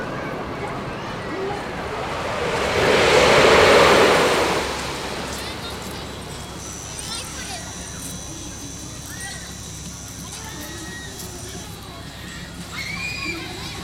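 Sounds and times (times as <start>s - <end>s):
crowd murmuring in an amusement park: 0.0s - 13.8s
loud rushing swell: 1.2s - 7.0s
thin high whine: 1.6s - 12.5s.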